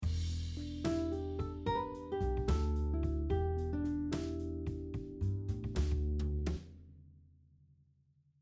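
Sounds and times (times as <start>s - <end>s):
guitar rhythm in six-eight time: 0.6s - 6.4s.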